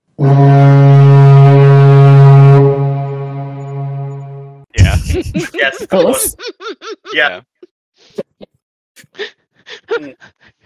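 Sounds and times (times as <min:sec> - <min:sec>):
foghorn deep steady blast: 0:00.2 - 0:04.7
laughter: 0:04.8 - 0:07.4, 0:09.7 - 0:10.6
speech: 0:05.7 - 0:07.6, 0:09.2 - 0:10.6.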